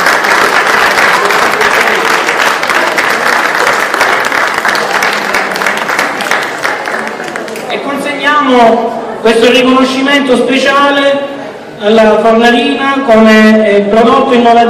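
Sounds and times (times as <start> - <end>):
audience applause at an Italian cooking award ceremony: 0.0 - 7.7
speech: 8.5 - 14.6.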